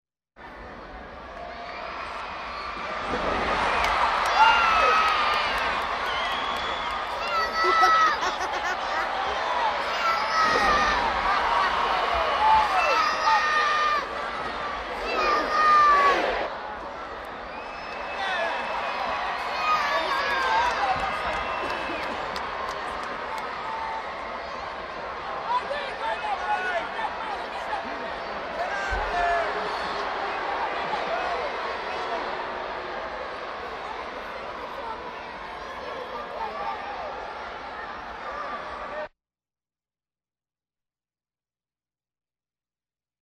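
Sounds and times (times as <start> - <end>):
crowd background noise: 0.4 - 39.1
laughter: 7.4 - 9.4, 21.5 - 22.6.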